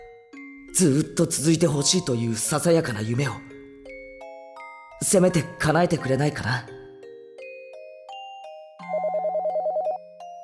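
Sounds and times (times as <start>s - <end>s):
speech: 0.8s - 3.5s, 5.0s - 6.7s
telephone ringing with a stepped electronic tone and warbling trill: 8.8s - 10.1s.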